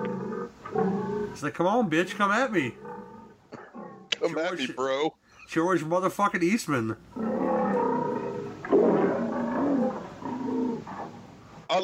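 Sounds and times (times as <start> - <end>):
lion roaring and growling in a film: 0.0 - 1.4, 2.7 - 4.3, 7.1 - 11.4
speech: 1.4 - 2.8, 4.2 - 7.3.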